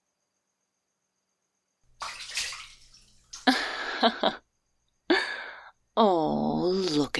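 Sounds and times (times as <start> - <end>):
sharp slaps of water in a bathtub: 1.9 - 3.8
water splashing and sloshing in a bathtub: 1.9 - 4.4
speech: 4.0 - 4.4, 6.0 - 7.1.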